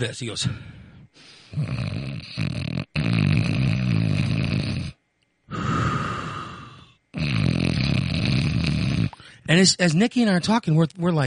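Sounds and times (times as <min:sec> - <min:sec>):
speech: 0:00.0 - 0:02.6, 0:09.5 - 0:11.2
man snoring heavily over the phone: 0:01.4 - 0:09.4.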